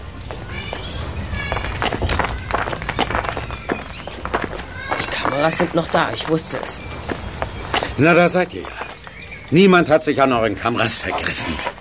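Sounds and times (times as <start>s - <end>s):
footsteps of people walking away: 0.0s - 11.8s
speech: 5.4s - 7.0s, 8.0s - 8.8s, 9.5s - 11.7s.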